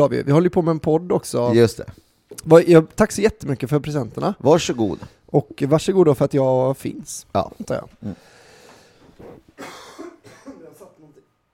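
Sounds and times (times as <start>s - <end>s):
speech: 0.0s - 8.4s
throat clearing: 9.6s - 10.8s
person coughing harshly: 9.6s - 11.0s.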